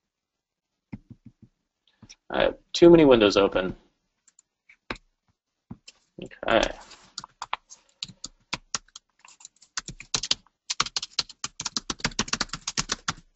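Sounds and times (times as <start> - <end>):
speech: 2.3 - 3.8, 6.2 - 6.8
rapid typing on a computer keyboard: 7.1 - 13.3.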